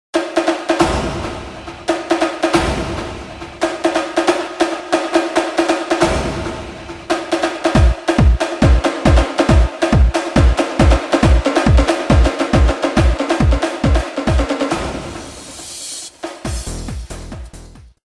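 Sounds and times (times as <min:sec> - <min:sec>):
drums: 0:00.2 - 0:18.0.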